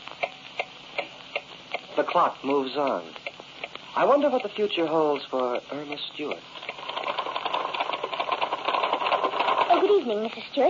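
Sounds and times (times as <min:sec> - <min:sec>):
steady hiss: 0:00.0 - 0:10.6
speech: 0:02.0 - 0:03.2, 0:04.0 - 0:06.6, 0:10.0 - 0:10.6
typewriter typing: 0:06.6 - 0:10.0.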